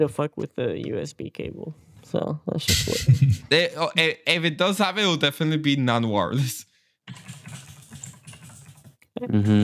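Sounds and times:
speech: 0.0 - 7.4, 9.2 - 9.6
typing on a computer keyboard: 7.1 - 9.0.

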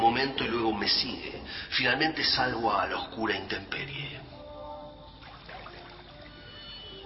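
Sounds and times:
speech: 0.1 - 4.3
hot water pouring and splashing from a wooden jug: 5.2 - 6.5.

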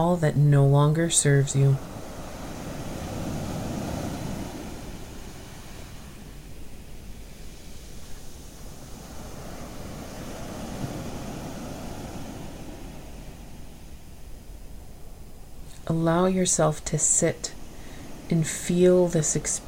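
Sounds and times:
speech: 0.0 - 2.0, 16.0 - 17.6, 18.3 - 19.6
ocean waves: 0.0 - 19.6.

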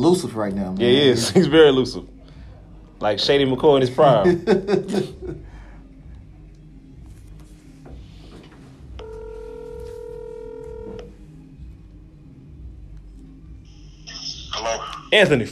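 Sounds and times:
speech: 0.0 - 2.2, 3.0 - 5.5, 15.1 - 15.5
laughter: 4.0 - 5.6
telephone ringback tone: 9.0 - 11.2.

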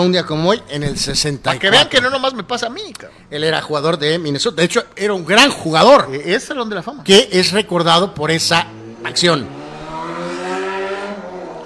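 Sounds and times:
speech: 0.0 - 9.6
motorcycle engine revving and passing by: 8.4 - 11.6.

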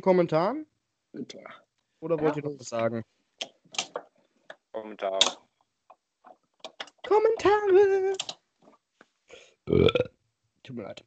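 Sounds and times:
speech: 0.0 - 4.0, 4.8 - 5.4, 7.0 - 8.4, 9.7 - 11.0
loud drawn-out burp: 9.7 - 10.2.

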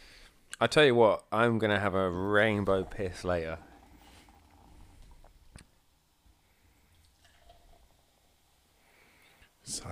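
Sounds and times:
speech: 0.6 - 3.7, 9.7 - 9.8
liquid pouring into a glass: 2.2 - 5.5, 6.9 - 8.4.

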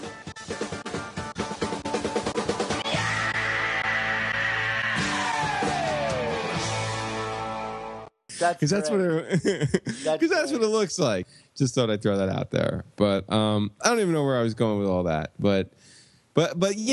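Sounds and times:
loud rock music with drums and guitar: 0.0 - 8.1
rock singer's long sustained scream: 2.8 - 6.6
speech: 8.4 - 16.9
laughter: 9.1 - 10.3.

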